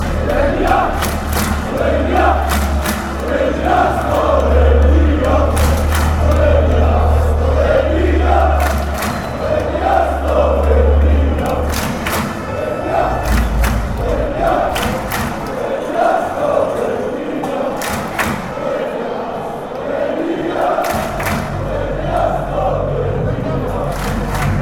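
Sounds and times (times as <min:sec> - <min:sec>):
chanting in Slovenia: 0:00.0 - 0:24.6.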